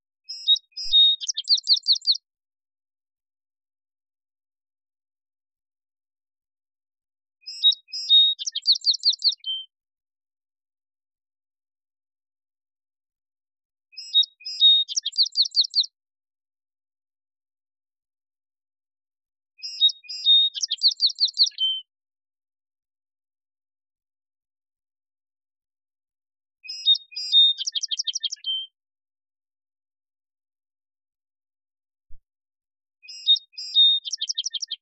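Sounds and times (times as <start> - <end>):
song sparrow: 0.2 - 2.3, 7.4 - 9.8, 13.9 - 16.0, 19.6 - 21.9, 26.6 - 28.8, 33.0 - 34.8.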